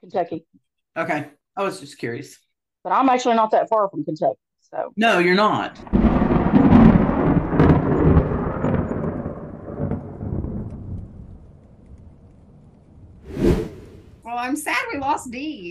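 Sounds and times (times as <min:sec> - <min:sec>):
speech: 0:00.1 - 0:06.6, 0:14.4 - 0:15.6
sudden sharp crack: 0:05.8 - 0:11.4
low murmur of storm noise: 0:05.8 - 0:14.4
heavy rumble of thunder: 0:05.8 - 0:14.5.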